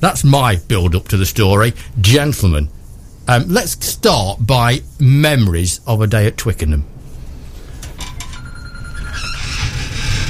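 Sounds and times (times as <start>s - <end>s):
speech: 0.0s - 7.0s
mobile phone ringing with electronic tone and chirping bursts: 8.1s - 9.7s.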